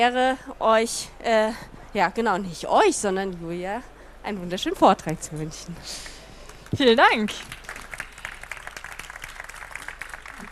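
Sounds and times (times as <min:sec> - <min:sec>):
speech: 0:00.0 - 0:07.5
audience applause at the start of a talk: 0:07.4 - 0:10.5.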